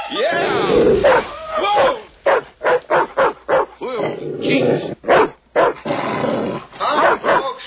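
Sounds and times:
female dog growling and whining: 0.3 - 1.9, 3.9 - 7.0
female dog barking and yipping: 1.0 - 3.8, 5.1 - 5.9, 6.8 - 7.6.

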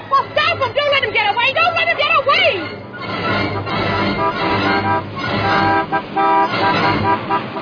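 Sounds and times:
car engine rumbling: 0.0 - 7.6
car horn honking: 2.0 - 7.6.

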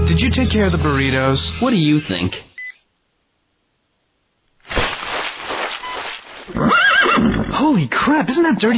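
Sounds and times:
speech: 0.2 - 2.5, 7.8 - 8.7
horse neighing: 6.5 - 7.6.

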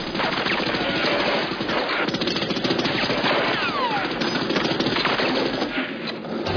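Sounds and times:
rapid gunfire inside a boat: 0.0 - 6.4.

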